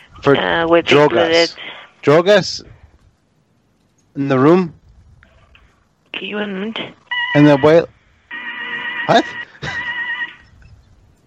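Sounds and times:
speech: 0.2 - 2.7, 4.2 - 4.8, 6.2 - 8.0, 9.1 - 9.8
donkey braying: 8.6 - 10.5.

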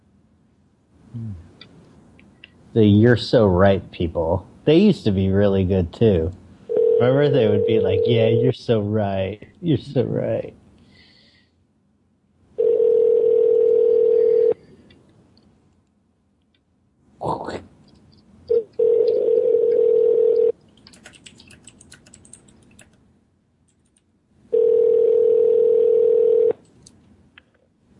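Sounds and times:
speech: 2.8 - 6.4, 7.0 - 10.6
outgoing call's ringback tone: 6.7 - 8.4, 12.6 - 14.6, 18.5 - 20.5, 24.5 - 26.6.

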